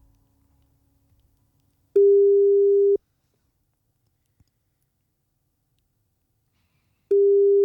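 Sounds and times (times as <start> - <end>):
telephone ringback tone during an unanswered call: 2.0 - 3.0, 7.1 - 7.6.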